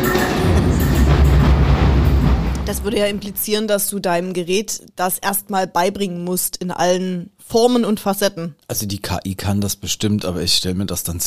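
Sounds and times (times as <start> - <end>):
train rumbling past with rattling wheels: 0.0 - 3.7
speech: 2.8 - 11.2.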